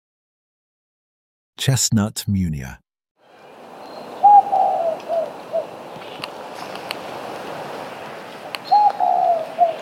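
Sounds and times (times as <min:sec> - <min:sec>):
speech: 0:01.6 - 0:02.8
Spotted Dove cooing on Maui Hawaii: 0:04.2 - 0:06.2, 0:08.6 - 0:09.7.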